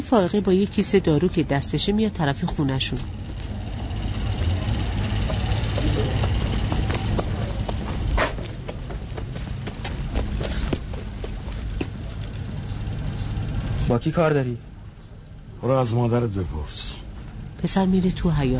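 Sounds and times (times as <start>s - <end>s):
speech: 0.0s - 3.3s, 14.0s - 14.7s, 15.6s - 16.9s, 17.6s - 18.5s
steady low rumbling background: 0.0s - 18.5s
footsteps of someone pacing on a hard surface: 5.2s - 12.0s.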